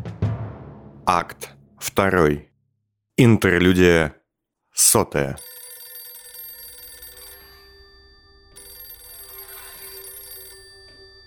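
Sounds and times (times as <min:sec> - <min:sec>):
speech: 0:01.1 - 0:02.5, 0:03.2 - 0:04.2, 0:04.8 - 0:05.5
telephone ringing beside a bed: 0:05.4 - 0:11.2.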